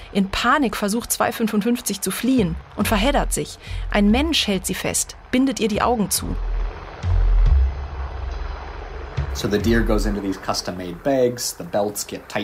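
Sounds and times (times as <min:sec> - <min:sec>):
very loud helicopter flying very low overhead: 0:00.0 - 0:12.4
speech: 0:00.1 - 0:06.5, 0:09.4 - 0:12.4.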